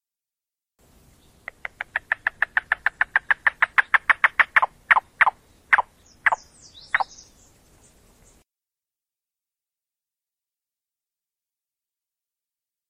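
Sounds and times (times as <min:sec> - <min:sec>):
faint high bird chirps: 0:01.2 - 0:08.4
yellow-billed cuckoo knocking call: 0:01.5 - 0:07.2.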